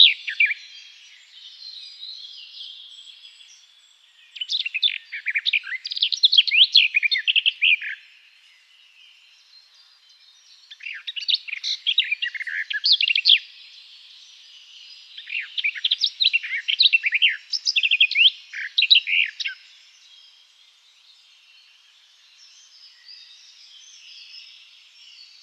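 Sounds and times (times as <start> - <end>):
garden warbler song: 0.0 - 25.4.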